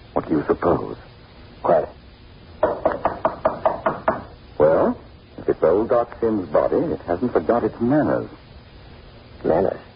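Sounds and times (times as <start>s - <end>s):
speech: 0.2s - 2.0s, 5.5s - 8.4s, 9.4s - 9.8s
knocking on a wooden cottage door: 2.6s - 4.3s.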